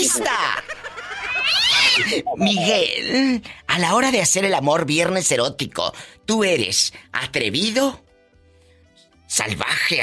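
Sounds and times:
speech: 0:00.0 - 0:00.8, 0:02.0 - 0:08.0, 0:09.3 - 0:10.0
laughter: 0:00.0 - 0:02.8
cat yowling and meowing: 0:01.0 - 0:02.6.

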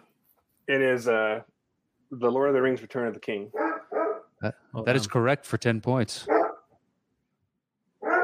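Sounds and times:
speech: 0:00.7 - 0:03.8, 0:04.4 - 0:06.3
dog barking: 0:03.5 - 0:04.3, 0:06.2 - 0:06.7, 0:08.0 - 0:08.2.

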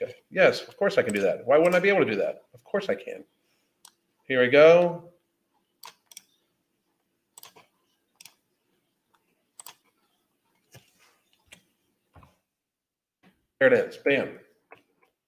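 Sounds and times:
speech: 0:00.4 - 0:03.4, 0:04.3 - 0:05.1, 0:13.6 - 0:14.4
typing on a computer keyboard: 0:07.4 - 0:08.4, 0:09.6 - 0:09.8.

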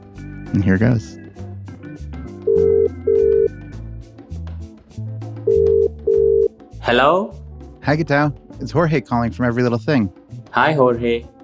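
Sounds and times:
speech: 0:00.5 - 0:01.2, 0:06.9 - 0:11.3
phone line ringing on an outgoing call to Kiambu County Kenya: 0:02.5 - 0:03.6, 0:05.5 - 0:06.5.

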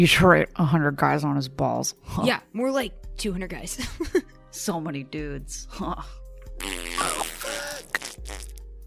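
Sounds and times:
speech: 0:00.0 - 0:07.3
fart: 0:06.6 - 0:08.6.

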